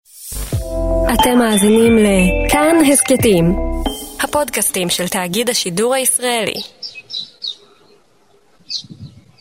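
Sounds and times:
speech: 0.6 - 3.7, 4.3 - 6.9
birds chirping on a top-floor rooftop: 2.3 - 9.3.

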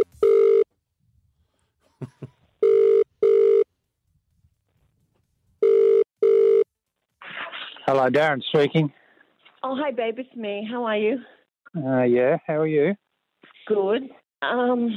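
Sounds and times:
ringback tone of an outgoing telephone call: 0.0 - 0.7, 2.6 - 3.6, 5.6 - 6.6
speech: 7.9 - 9.0, 9.6 - 13.0, 13.7 - 14.9.

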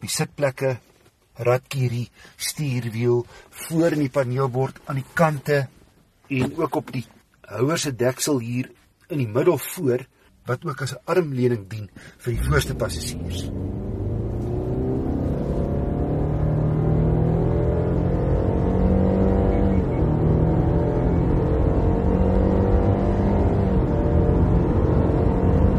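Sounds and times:
speech: 0.0 - 13.8
Subaru naturally aspirated 2-litre boxer engine revving: 12.4 - 25.7.

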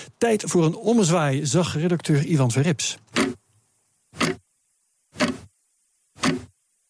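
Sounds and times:
speech: 0.2 - 3.4
mechanical wristwatch ticking: 3.1 - 3.4, 4.2 - 4.4, 5.2 - 5.5, 6.2 - 6.6.

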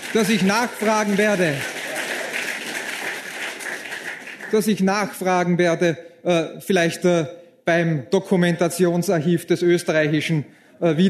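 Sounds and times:
audience applause: 0.0 - 4.8
speech: 0.1 - 1.7, 4.5 - 11.0.

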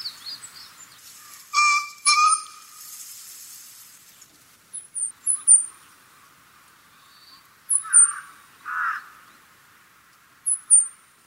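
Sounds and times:
green pheasant giving short harsh hoarse notes on Senami coast, Niigata Prefecture, Japan: 0.0 - 2.8, 4.7 - 5.9, 6.9 - 9.3, 10.4 - 11.0.

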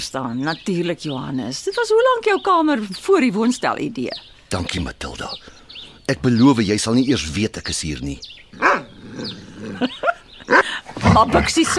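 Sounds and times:
speech: 0.0 - 9.9, 11.2 - 11.7
dog barking with sharp woofs: 8.6 - 9.0, 10.5 - 10.8
laughter: 9.6 - 11.7.

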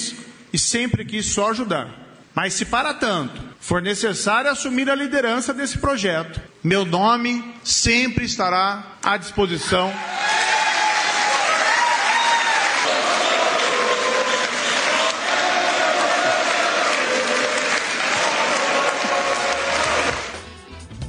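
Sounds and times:
speech: 0.5 - 10.6
large crowd applauding: 10.0 - 20.6.

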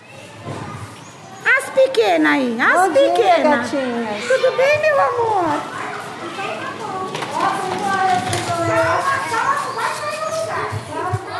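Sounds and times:
crowd of children chattering and calling out arriving at school: 0.0 - 11.3
speech: 1.9 - 5.8
children running: 4.2 - 11.3.

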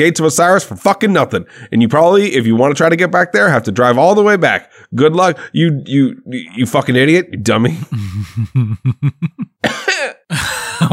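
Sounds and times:
speech: 0.0 - 10.9
laughter: 7.7 - 9.6, 10.3 - 10.9
short rhythmic coughs or throat-clearing: 9.6 - 10.2
louder harsh coughs: 9.6 - 10.9.

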